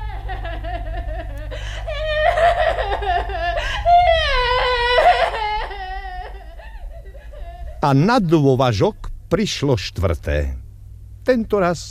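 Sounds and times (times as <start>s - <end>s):
baby crying and whimpering: 0.0s - 7.8s
low steady hum: 0.0s - 11.9s
speech: 7.8s - 10.6s, 11.2s - 11.9s.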